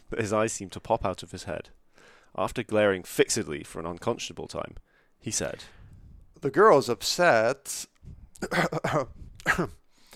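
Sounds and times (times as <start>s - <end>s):
speech: 0.2s - 5.8s, 6.4s - 9.8s
throaty coughs: 8.4s - 9.8s.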